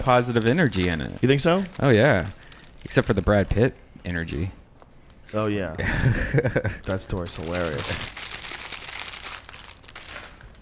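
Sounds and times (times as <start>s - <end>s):
papery crinkling and rustling: 0.0s - 3.7s, 6.8s - 10.6s
speech: 0.0s - 4.6s, 5.3s - 8.2s
laughter: 5.8s - 6.9s.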